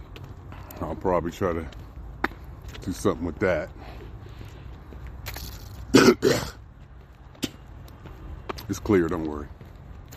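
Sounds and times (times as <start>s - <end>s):
speech: 0.8s - 1.8s, 2.8s - 4.0s, 8.8s - 9.6s
person clearing throat: 5.9s - 6.6s
person coughing harshly: 5.9s - 6.6s.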